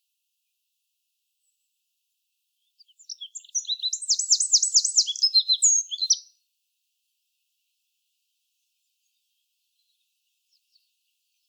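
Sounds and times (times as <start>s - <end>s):
Eurasian wren Troglodytes troglodytes song of piercing notes and trills: 2.6s - 6.4s.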